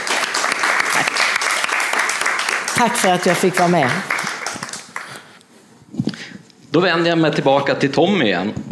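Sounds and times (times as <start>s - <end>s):
audience applause: 0.0s - 5.3s
speech: 2.8s - 4.2s, 6.8s - 8.6s.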